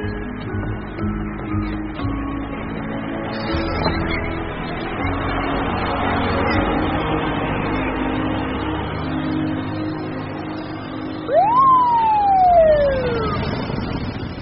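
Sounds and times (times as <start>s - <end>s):
steady low engine rumble: 0.0s - 14.4s
siren whoop sweeping up and sliding down: 11.2s - 14.0s.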